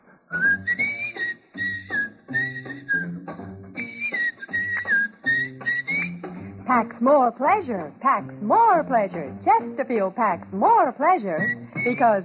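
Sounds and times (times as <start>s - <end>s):
person whistling a lively tune: 0.3s - 6.4s, 11.4s - 12.1s
small band playing: 0.4s - 12.2s
speech: 6.7s - 12.2s.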